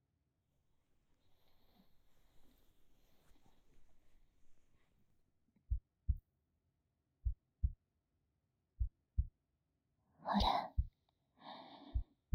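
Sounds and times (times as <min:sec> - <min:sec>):
racing heartbeat: 0:05.7 - 0:06.2, 0:07.2 - 0:07.8, 0:08.8 - 0:09.4, 0:10.4 - 0:11.0, 0:11.9 - 0:12.3.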